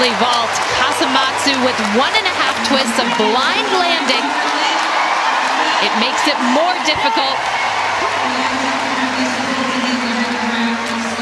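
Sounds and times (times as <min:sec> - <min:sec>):
large crowd roaring and cheering: 0:00.0 - 0:11.2
speech: 0:00.1 - 0:04.5, 0:05.8 - 0:09.8.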